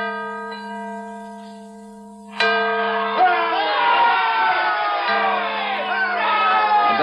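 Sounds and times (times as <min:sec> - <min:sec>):
large repaired cracked bell in Philadelphia ringing: 0:00.0 - 0:07.0
faint crowd noise: 0:03.1 - 0:07.0.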